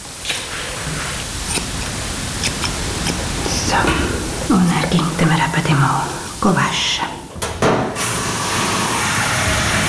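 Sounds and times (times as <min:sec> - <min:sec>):
steady hiss: 0:00.0 - 0:09.7
scissors snipping fur on the feet to trim it into shape: 0:01.5 - 0:03.6
speech: 0:05.6 - 0:07.2.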